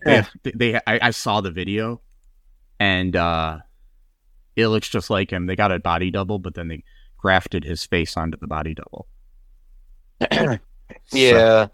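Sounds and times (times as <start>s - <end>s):
person clearing throat: 0.0s - 0.4s, 10.2s - 11.4s
speech: 0.0s - 2.0s, 2.8s - 3.7s, 4.6s - 9.1s, 10.2s - 11.7s.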